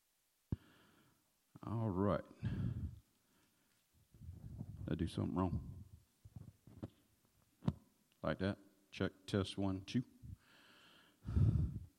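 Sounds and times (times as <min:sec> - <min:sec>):
heavy breath blown into the microphone: 0:00.5 - 0:01.2, 0:02.4 - 0:03.8, 0:10.3 - 0:11.9
speech: 0:01.6 - 0:03.0, 0:04.9 - 0:05.7, 0:08.3 - 0:10.1.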